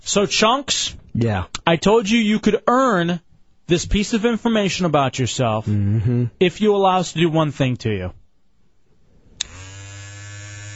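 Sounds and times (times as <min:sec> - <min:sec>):
speech: 0:00.1 - 0:08.2
electric shaver clicking on and buzzing: 0:09.4 - 0:10.7.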